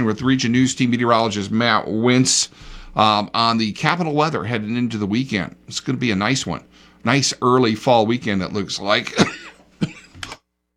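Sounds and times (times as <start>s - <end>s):
speech: 0.0s - 10.3s
person with seasonal allergies coughing: 9.1s - 10.4s.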